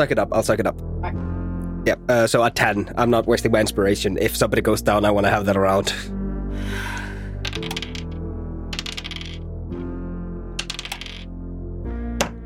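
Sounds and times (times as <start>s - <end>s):
speech: 0.0s - 6.9s
dice clattering and tumbling across a tabletop: 7.4s - 9.4s, 10.6s - 11.3s.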